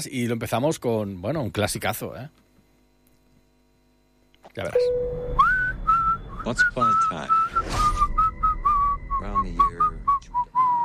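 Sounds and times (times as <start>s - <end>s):
speech: 0.0s - 2.4s, 4.6s - 5.6s, 6.4s - 7.9s, 9.2s - 9.9s
faint low hum: 0.0s - 10.8s
person whistling a jaunty film tune into a microphone: 5.2s - 10.8s.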